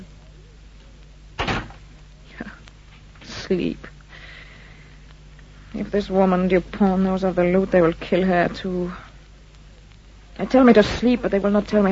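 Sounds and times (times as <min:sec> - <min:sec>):
steady low hum: 0:00.0 - 0:11.9
door thumping open: 0:01.4 - 0:01.8
speech: 0:03.5 - 0:04.0, 0:05.8 - 0:09.0, 0:10.4 - 0:11.9.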